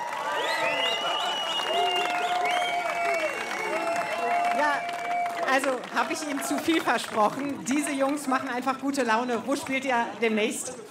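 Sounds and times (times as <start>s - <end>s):
crowd shouting and whooping: 0.0s - 5.8s
audience clapping: 0.0s - 10.0s
speech: 5.5s - 10.8s.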